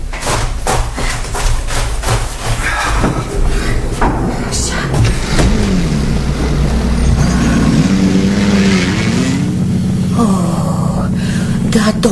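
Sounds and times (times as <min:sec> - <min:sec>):
brief clunk like a door: 0:00.1 - 0:09.5
car engine starting, revving and pulling away: 0:02.7 - 0:12.1.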